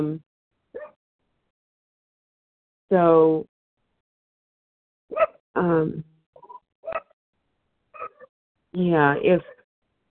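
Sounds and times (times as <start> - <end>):
speech: 0.0 - 0.3, 2.9 - 3.5, 5.1 - 6.1, 8.7 - 9.6
dog barking: 0.8 - 1.0, 5.1 - 5.4, 8.0 - 8.3.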